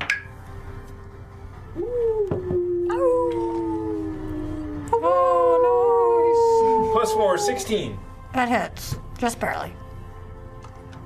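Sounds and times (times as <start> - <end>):
person imitating a wolf howl: 1.7 - 8.0
speech: 7.1 - 9.8.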